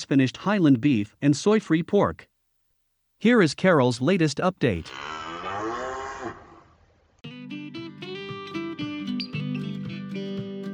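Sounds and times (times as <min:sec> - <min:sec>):
speech: 0:00.0 - 0:02.3, 0:03.2 - 0:05.2
beef cattle mooing in a winter paddock on a farm: 0:04.8 - 0:06.8.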